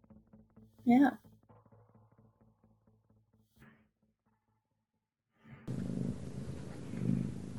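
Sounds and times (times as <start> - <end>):
speech: 0.8 - 1.3
cat purring: 5.7 - 7.5.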